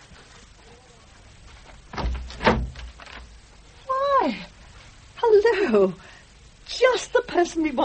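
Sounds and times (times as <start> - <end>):
low thump of a front door being opened: 1.9 - 3.0
speech: 5.6 - 6.1, 7.0 - 7.8.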